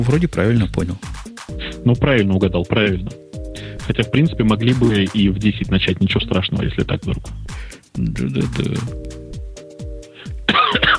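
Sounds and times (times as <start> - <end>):
speech: 0.0 - 1.2, 1.8 - 9.2
person coughing harshly: 10.2 - 10.9.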